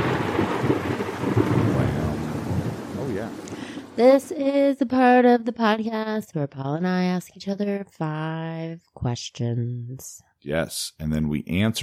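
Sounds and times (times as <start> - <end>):
deep rolling thunder rumble: 0.0 - 4.0
rain hiss: 0.0 - 4.0
speech: 4.0 - 11.8.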